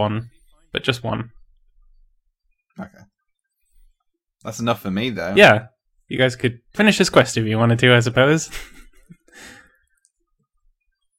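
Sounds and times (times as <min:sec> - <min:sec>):
speech: 0:00.0 - 0:01.4, 0:02.8 - 0:03.1, 0:04.4 - 0:08.8
heavy breathy exhale: 0:09.3 - 0:09.8.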